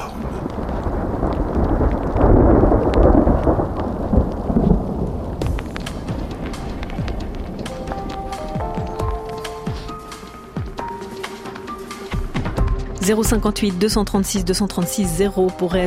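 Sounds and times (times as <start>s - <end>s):
hail clattering: 0.0s - 11.0s
deep rumbling thunder of a heavy thunderstorm: 0.0s - 13.4s
speech: 13.1s - 15.8s.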